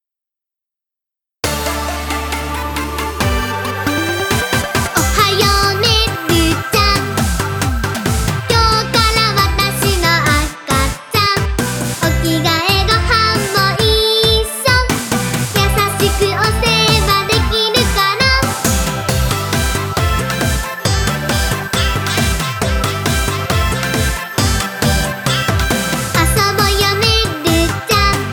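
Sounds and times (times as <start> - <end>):
solo dance music: 1.4 - 28.3.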